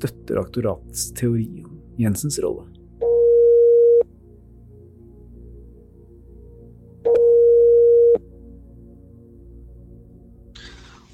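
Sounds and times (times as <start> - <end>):
speech: 0.0 - 2.8
telephone ringback tone on an outgoing call: 3.0 - 4.0, 7.1 - 8.2.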